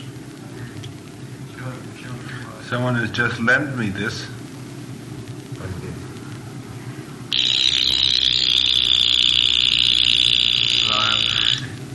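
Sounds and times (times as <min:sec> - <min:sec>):
speech: 0:02.0 - 0:04.4
watch alarm high-pitched electronic buzz: 0:07.3 - 0:11.7.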